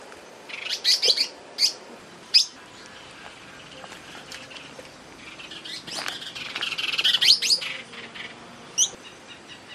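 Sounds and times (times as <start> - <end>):
pale baywing chirping: 0.5 - 9.7.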